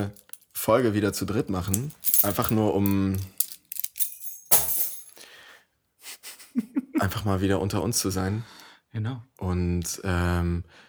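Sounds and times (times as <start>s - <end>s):
keys jingling as they are taken off: 0.0s - 0.6s, 1.6s - 5.3s
speech: 0.0s - 3.4s, 7.0s - 10.8s.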